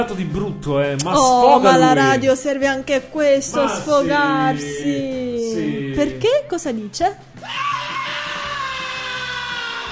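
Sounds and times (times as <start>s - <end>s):
speech: 0.0s - 7.8s
loud sustained raw strained scream: 7.4s - 9.9s.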